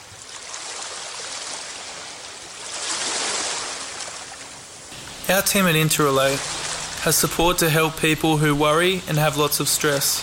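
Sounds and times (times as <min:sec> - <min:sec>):
ocean waves crashing: 0:00.0 - 0:10.2
speech: 0:05.3 - 0:10.2.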